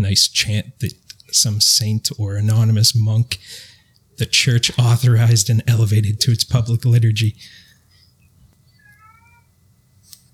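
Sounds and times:
speech: 0.0s - 7.6s
low hum: 0.0s - 10.3s
domestic cat meowing: 8.8s - 9.5s.

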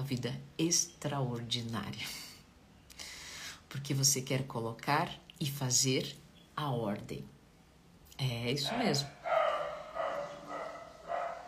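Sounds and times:
speech: 0.1s - 2.3s, 3.7s - 7.4s, 8.2s - 9.4s
small dog barking: 8.7s - 11.4s.

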